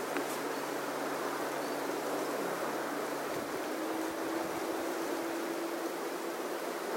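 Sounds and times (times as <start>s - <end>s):
rushing wind: 0.0s - 6.9s.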